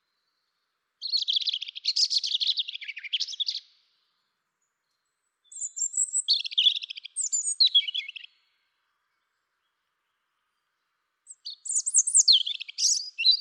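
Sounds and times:
European robin singing: 0:00.0 - 0:13.3.

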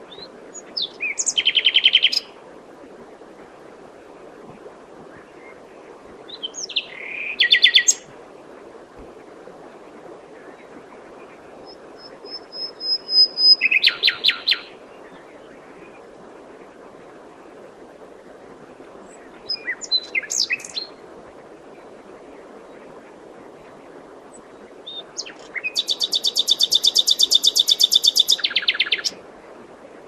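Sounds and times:
constant background noise: 0:00.0 - 0:30.0
common nightingale Luscinia megarhynchos singing: 0:00.1 - 0:02.4, 0:06.3 - 0:08.1, 0:11.2 - 0:15.9, 0:19.1 - 0:21.0, 0:24.3 - 0:29.2.

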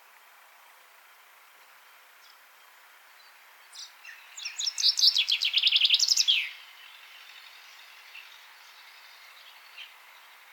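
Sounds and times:
common chaffinch Fringilla coelebs singing: 0:03.2 - 0:10.5.

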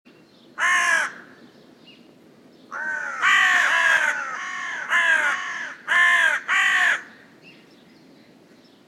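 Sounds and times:
carrion crow Corvus corone giving rasping caws: 0:00.6 - 0:01.3, 0:02.7 - 0:07.2.

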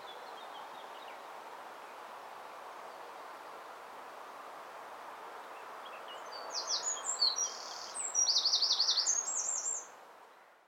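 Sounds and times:
soft steady noise: 0:00.0 - 0:10.6
Eurasian wren Troglodytes troglodytes singing high trills: 0:06.6 - 0:09.9.

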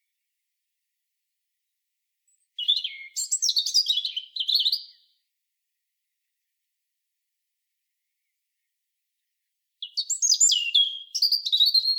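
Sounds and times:
European robin singing twittering warbled phrases: 0:02.3 - 0:05.2, 0:09.8 - 0:11.9.

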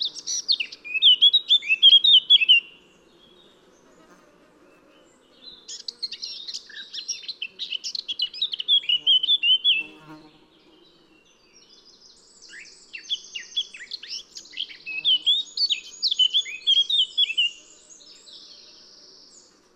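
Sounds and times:
Eurasian blackcap Sylvia atricapilla singing: 0:00.0 - 0:02.8, 0:05.7 - 0:09.9, 0:12.5 - 0:17.6.

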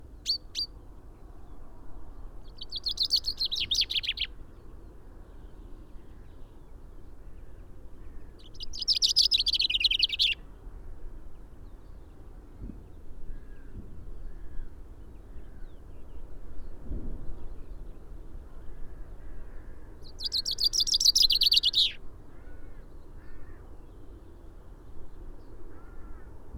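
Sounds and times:
common chaffinch Fringilla coelebs song with falling trills: 0:00.0 - 0:00.9, 0:02.4 - 0:04.3, 0:08.4 - 0:10.4, 0:20.0 - 0:22.0.

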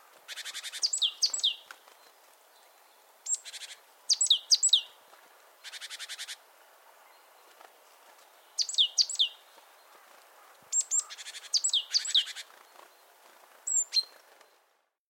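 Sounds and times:
faint background hiss: 0:00.0 - 0:15.0
great tit Parus major singing: 0:00.3 - 0:02.1, 0:02.8 - 0:05.0, 0:08.4 - 0:12.5.

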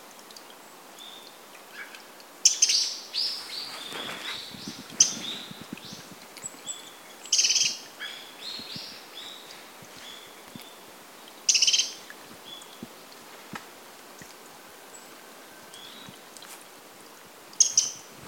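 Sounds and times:
Eurasian wren Troglodytes troglodytes rattling calls: 0:01.8 - 0:10.7, 0:11.5 - 0:12.7.

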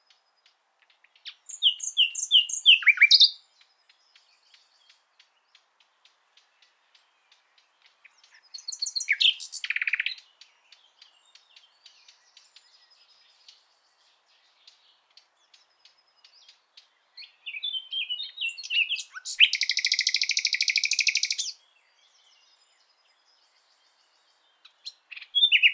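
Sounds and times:
common nightingale quiet scattered twittering notes: 0:01.2 - 0:03.4, 0:08.2 - 0:10.2, 0:17.2 - 0:21.6, 0:24.8 - 0:25.7.

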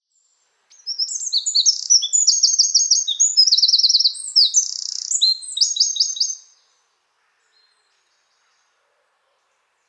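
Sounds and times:
Eurasian wren Troglodytes troglodytes singing: 0:00.7 - 0:06.5.

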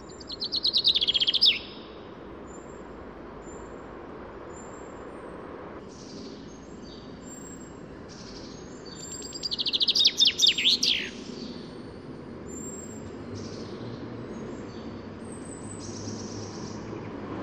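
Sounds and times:
Common chaffinch rattling descending song: 0:00.0 - 0:17.3.

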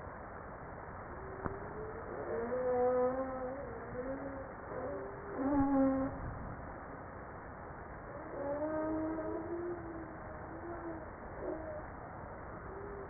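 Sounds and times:
background hiss: 0:00.0 - 0:13.0
humpback whale moans: 0:01.2 - 0:06.3, 0:08.1 - 0:12.0.

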